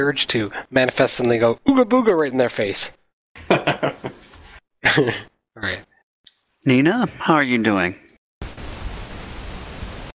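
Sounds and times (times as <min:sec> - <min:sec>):
speech: 0:00.0 - 0:03.8, 0:05.0 - 0:05.9, 0:06.6 - 0:08.5
laughter: 0:03.4 - 0:05.3
white noise hiss from failing wireless transmitter: 0:08.4 - 0:10.1.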